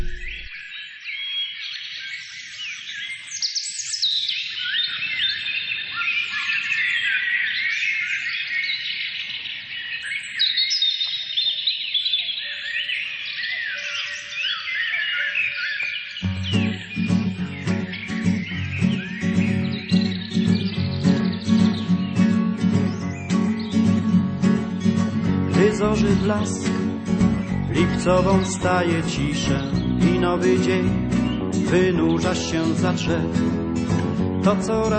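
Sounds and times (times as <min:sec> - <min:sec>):
birds chirping and singing: 0:00.0 - 0:34.9
music: 0:16.2 - 0:34.9
speech: 0:26.3 - 0:26.8, 0:28.0 - 0:31.1, 0:31.7 - 0:33.6, 0:34.4 - 0:34.9.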